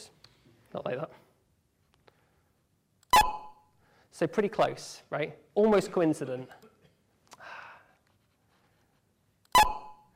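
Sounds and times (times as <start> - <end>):
speech: 0.7 - 1.2, 4.2 - 6.6
pair of electronic beeps 30 milliseconds apart: 3.1 - 3.7, 9.5 - 10.1.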